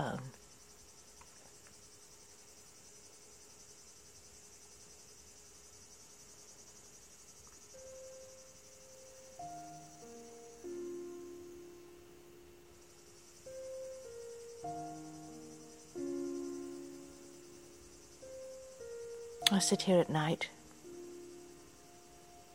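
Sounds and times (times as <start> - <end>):
crickets chirping at night: 0.0 - 22.5
soft tuneful notes: 7.8 - 22.5
speech: 19.5 - 20.6.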